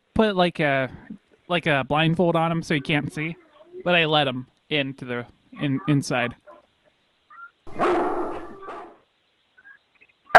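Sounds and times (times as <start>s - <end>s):
speech: 0.2s - 6.4s
dog yelping: 7.3s - 9.0s.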